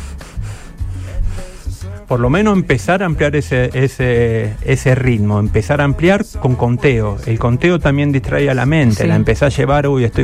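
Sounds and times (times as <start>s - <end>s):
shallow rapid panting breaths: 0.0s - 2.0s
speech: 2.1s - 10.2s.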